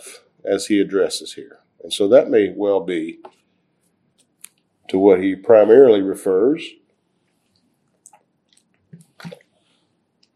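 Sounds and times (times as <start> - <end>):
speech: 0.4 - 3.4, 4.9 - 6.8, 9.2 - 9.4
person sipping and gulping water: 7.4 - 9.6, 10.2 - 10.3.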